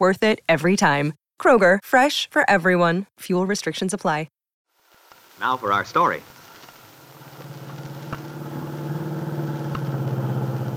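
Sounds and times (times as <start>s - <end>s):
speech: 0.0s - 4.4s, 5.4s - 6.4s
car engine humming while driving toward a farm: 6.8s - 10.7s.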